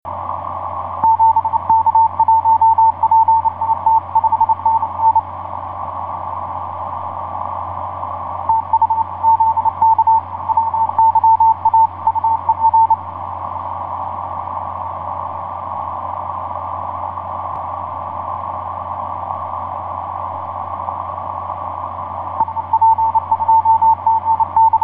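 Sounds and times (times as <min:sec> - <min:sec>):
morse code signal on the 20m band: 0:01.0 - 0:05.3, 0:08.5 - 0:13.1, 0:22.4 - 0:24.8.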